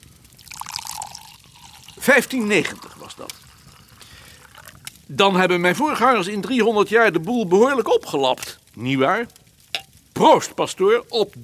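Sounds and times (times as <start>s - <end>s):
wine being poured in a castle: 0.0s - 6.8s, 9.7s - 10.0s
speech: 2.0s - 3.5s, 5.1s - 9.4s, 10.2s - 11.4s.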